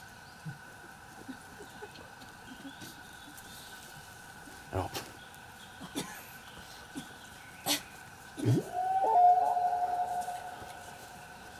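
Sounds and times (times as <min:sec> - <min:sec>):
human voice imitating whale call: 0:08.4 - 0:10.6.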